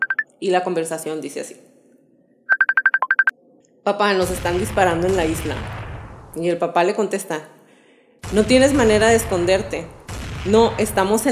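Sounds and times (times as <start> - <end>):
father's phone ringing with short electronic beeps: 0.0 - 0.3, 2.5 - 3.3
speech: 0.4 - 1.7, 3.9 - 7.6, 8.3 - 11.3.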